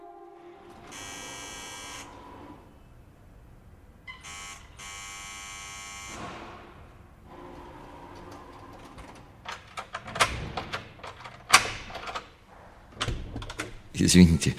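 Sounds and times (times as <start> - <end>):
harsh electric doorbell buzzer: 0.6 - 2.2, 4.2 - 6.2
clicks and clunks of a door being handled: 8.1 - 13.9
speech: 14.0 - 14.5.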